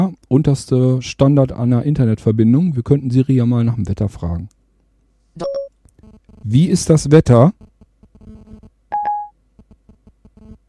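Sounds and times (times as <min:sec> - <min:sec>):
speech: 0:00.3 - 0:04.6, 0:05.4 - 0:05.6, 0:06.4 - 0:08.4
electronic telephone tones as data is sent over a mobile connection: 0:05.4 - 0:05.7, 0:08.2 - 0:09.3.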